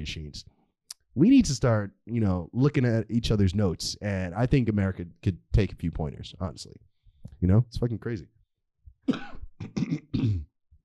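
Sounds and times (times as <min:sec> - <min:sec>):
speech: 0:00.0 - 0:00.6, 0:01.2 - 0:08.4, 0:09.0 - 0:10.5
person coughing with harsh rasping hack: 0:09.1 - 0:10.5
throat clearing: 0:09.1 - 0:10.5.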